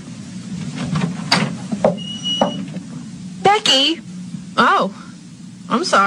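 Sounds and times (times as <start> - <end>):
steady low hum: 0.0 - 6.0
door squeak: 1.8 - 2.8
speech: 3.6 - 5.0, 5.7 - 6.0.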